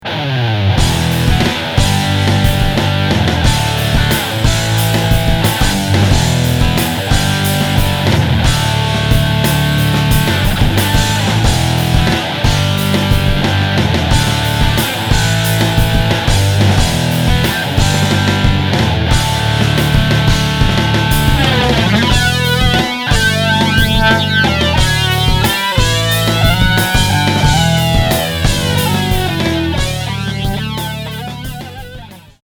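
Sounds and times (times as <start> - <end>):
metal guitar riff: 0.0 - 32.4.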